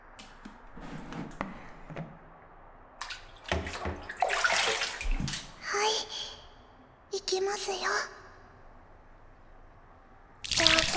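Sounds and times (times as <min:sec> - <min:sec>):
warm water running over hair rinsed after shampooing: 0:03.0 - 0:05.6, 0:10.4 - 0:10.9
speech: 0:07.6 - 0:08.2.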